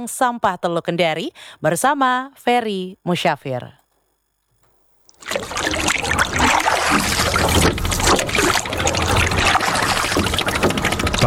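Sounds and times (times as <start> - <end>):
speech: 0.0 - 3.8, 6.9 - 7.9
paddle strokes: 5.2 - 11.2
water sloshing and splashing around a small boat: 5.2 - 11.2.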